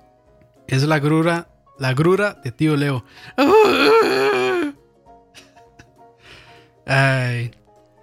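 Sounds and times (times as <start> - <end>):
speech: 0.7 - 4.6, 6.9 - 7.6
wailing scream from a played video: 3.4 - 4.8.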